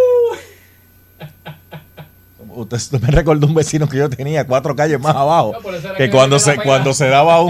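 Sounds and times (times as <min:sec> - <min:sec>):
voice imitating a howling dog: 0:00.0 - 0:00.5
speech: 0:02.6 - 0:07.4.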